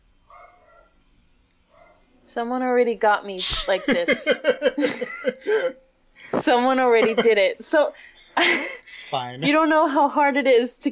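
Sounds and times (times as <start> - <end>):
dog barking: 0.3 - 1.0, 1.7 - 2.1
speech: 2.3 - 5.8, 6.4 - 10.9
laughter: 3.7 - 9.7.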